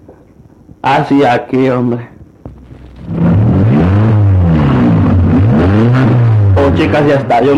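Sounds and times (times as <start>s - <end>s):
speech: 0.8s - 2.1s, 6.8s - 7.5s
car engine started with a key and revving: 2.6s - 7.5s.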